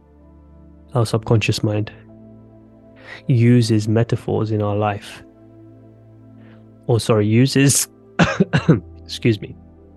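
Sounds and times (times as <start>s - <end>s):
speech: 0.9s - 2.1s, 3.1s - 5.3s, 6.9s - 9.6s
person clearing throat: 8.2s - 8.8s
short dry tickly coughs from a lingering cough: 8.2s - 8.9s.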